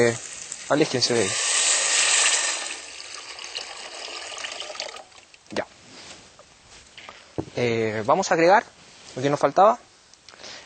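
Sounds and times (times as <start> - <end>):
speech: 0.0 - 1.4, 7.6 - 9.9
water pouring into a cooking pot of half-cooked food: 0.0 - 5.4.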